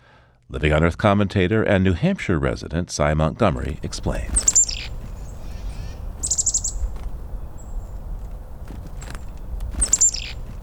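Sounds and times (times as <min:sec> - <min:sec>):
speech: 0:00.5 - 0:04.8
low outdoor rumble: 0:03.3 - 0:10.6
chickadee scolding winter calls: 0:03.7 - 0:10.6.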